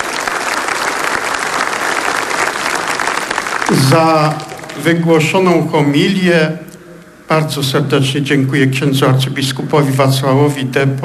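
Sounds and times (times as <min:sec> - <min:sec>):
applause from a large audience: 0:00.0 - 0:05.1
speech: 0:03.7 - 0:06.6, 0:07.3 - 0:11.0.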